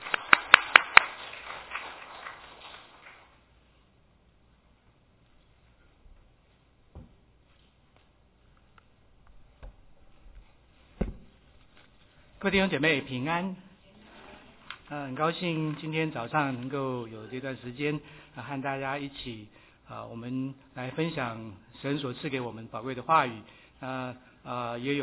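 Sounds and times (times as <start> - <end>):
audience clapping in welcome: 0.0 - 3.4
soft thumps: 6.9 - 7.4, 9.3 - 11.8
speech: 12.4 - 13.7, 14.9 - 25.0.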